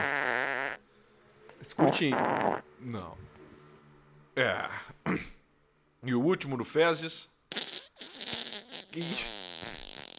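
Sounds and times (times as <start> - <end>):
buzzy electronic fart sound effect: 0.0 - 0.8, 1.8 - 2.6, 7.5 - 10.1
speech: 1.6 - 3.4, 4.4 - 5.3, 6.0 - 7.3, 8.9 - 9.4.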